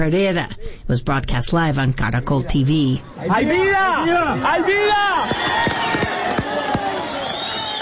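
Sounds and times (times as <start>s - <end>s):
speech: 0.0s - 6.0s
dense agitated crowd murmuring and shouting at collapsed four-story building rescue site: 2.8s - 7.8s.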